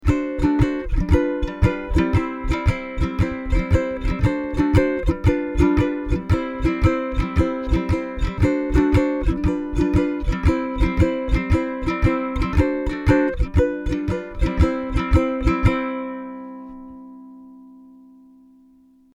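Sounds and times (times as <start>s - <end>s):
vamp chord strumming and picking on ukulele: 0.0s - 19.1s.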